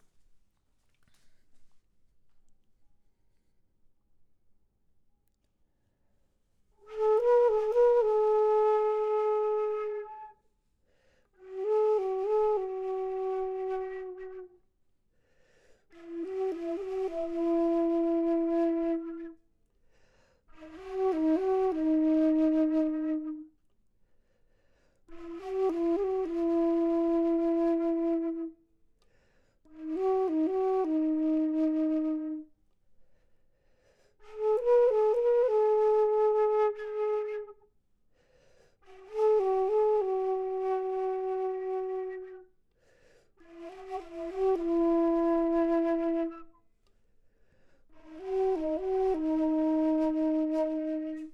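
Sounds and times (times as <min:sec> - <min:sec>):
low flute: 0:06.8 - 0:10.5, 0:11.4 - 0:14.7, 0:15.9 - 0:19.5, 0:20.5 - 0:23.6, 0:25.1 - 0:28.7, 0:29.6 - 0:32.6, 0:34.2 - 0:37.7, 0:38.8 - 0:42.6, 0:43.4 - 0:46.7, 0:47.9 - 0:51.3.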